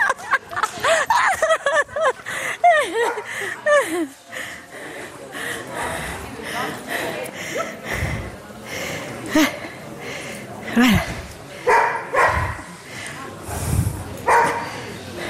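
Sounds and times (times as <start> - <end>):
laughter: 0.0 - 13.5
general noise: 0.0 - 15.2
dog barking at a dog competition: 11.7 - 12.6, 14.3 - 14.6.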